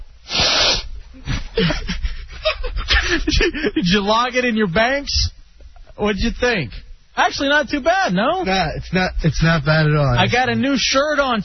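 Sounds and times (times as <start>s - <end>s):
person sniffing another person: 0.2s - 1.6s
speech: 1.6s - 5.3s, 6.0s - 11.4s.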